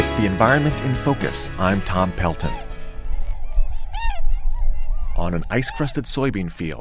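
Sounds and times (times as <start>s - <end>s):
speech: 0.2s - 2.7s, 5.2s - 6.8s
tundra swans giving hooting and bugling calls: 2.3s - 6.1s.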